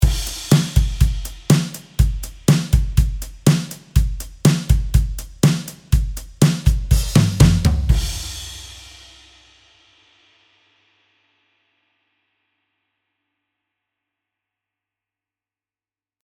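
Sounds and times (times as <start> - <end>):
vintage drums: 0.0 - 9.7.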